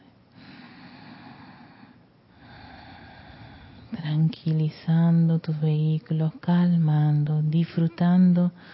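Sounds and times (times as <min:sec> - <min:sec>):
slow airy breathing during a guided breathing exercise: 0:00.1 - 0:04.0
speech: 0:04.0 - 0:08.7.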